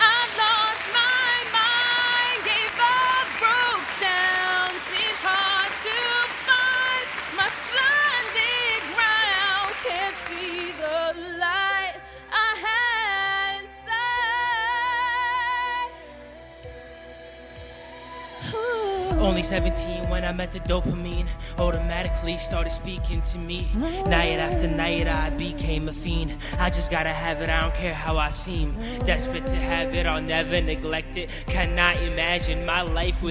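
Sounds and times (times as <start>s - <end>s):
audience applause: 0.0s - 11.0s
music playing: 0.0s - 33.2s
speech: 19.4s - 33.2s.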